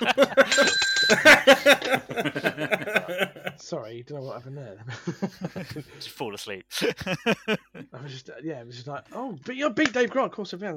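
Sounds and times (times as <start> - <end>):
single bright metallic bell ringing: 0.0 - 3.2
laughter: 0.0 - 3.6, 4.8 - 6.1, 6.7 - 8.1
speech: 3.9 - 10.7.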